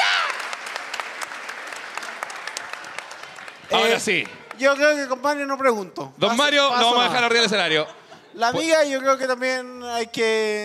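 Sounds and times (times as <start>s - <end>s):
crowd clapping: 0.0s - 5.2s
speech: 3.7s - 10.6s
laughter: 7.0s - 8.8s.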